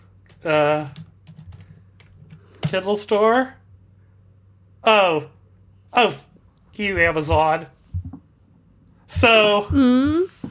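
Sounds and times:
speech: 0.4 - 1.1, 2.7 - 3.6, 4.8 - 7.8, 9.1 - 10.4
typing on a computer keyboard: 1.0 - 2.4.

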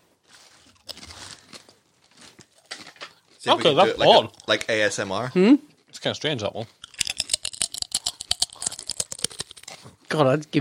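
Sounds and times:
someone biting and chewing cheese-flavoured nachos: 0.3 - 4.9, 6.7 - 10.0
speech: 3.4 - 6.8, 10.1 - 10.6.

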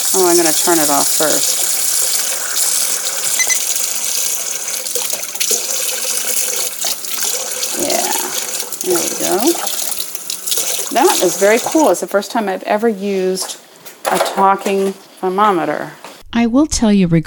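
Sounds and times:
water running from a kitchen tap, rinsing a pan: 0.0 - 12.2
speech: 0.1 - 1.6, 8.9 - 9.8, 10.9 - 17.2.

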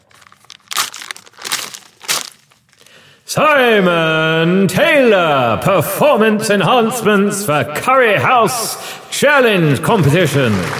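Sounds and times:
paper envelope torn open: 0.0 - 2.9
speech: 3.3 - 10.7.

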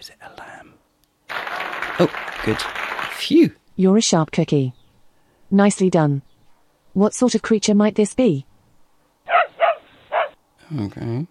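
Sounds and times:
speech: 2.0 - 4.8, 5.5 - 6.3, 7.0 - 8.5, 10.7 - 11.2
dog barking: 9.3 - 10.4.

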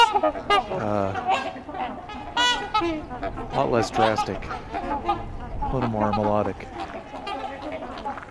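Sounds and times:
trumpeter swans calling with brassy honks: 0.0 - 8.2
speech: 0.1 - 2.2, 2.8 - 7.0.

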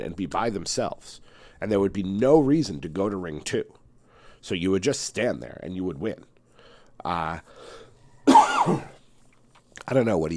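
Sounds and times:
speech: 0.0 - 3.8, 4.4 - 6.3, 7.0 - 7.8, 8.6 - 8.9, 9.8 - 10.3
person coughing: 8.3 - 9.0.

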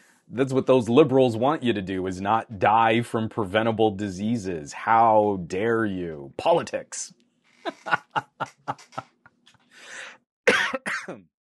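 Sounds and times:
speech: 0.3 - 9.1
person chuckling: 7.6 - 9.3
harsh overdriven coughs into the microphone: 10.5 - 11.3.

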